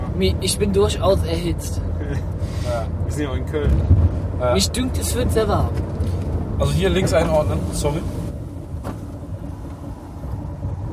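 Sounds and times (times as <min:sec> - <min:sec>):
road noise from a car driving through city traffic with windows down: 0:00.0 - 0:10.9
speech: 0:00.2 - 0:06.0, 0:06.6 - 0:08.2.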